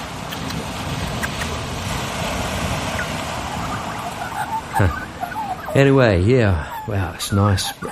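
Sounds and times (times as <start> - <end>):
ocean waves rolling onto a beach: 0.0 - 7.9
Australian magpie calling: 2.9 - 7.9
speech: 4.8 - 5.0, 5.8 - 7.9.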